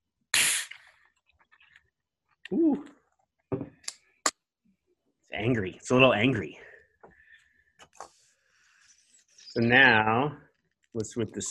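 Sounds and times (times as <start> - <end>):
gas hissing from nitro beer can: 0.3 - 0.9
speech: 2.5 - 3.0, 5.4 - 6.7, 9.6 - 11.4.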